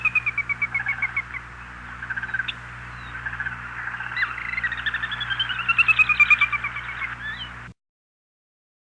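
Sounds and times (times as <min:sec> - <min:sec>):
Sora calling clipped notes: 0:00.0 - 0:07.7.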